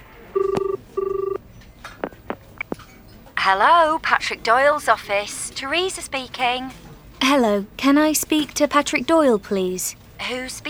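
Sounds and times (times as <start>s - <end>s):
telephone line ringing in double-burst pattern: 0.4s - 1.4s
speech: 3.4s - 10.6s.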